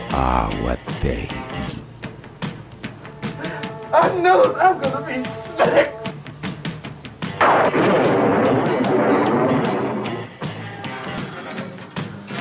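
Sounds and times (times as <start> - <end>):
speech: 0.1 - 1.9, 4.0 - 6.0
bombs exploding in a dense barrage: 7.4 - 10.0.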